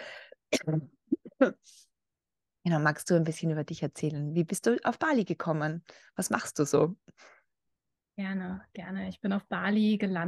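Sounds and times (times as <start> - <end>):
faint breath: 0.0 - 0.4
person coughing: 0.5 - 0.9
speech: 0.7 - 1.9, 2.6 - 7.4, 8.2 - 10.2.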